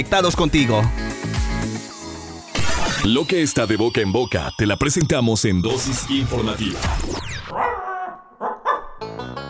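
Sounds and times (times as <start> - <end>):
speech: 0.0 - 1.1, 3.0 - 7.3
dog yelping barks: 7.5 - 9.0.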